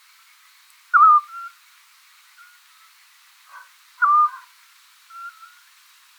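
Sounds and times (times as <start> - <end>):
Eurasian scops owl whistling: 1.0 - 1.5, 4.0 - 4.4
speech: 3.6 - 4.1.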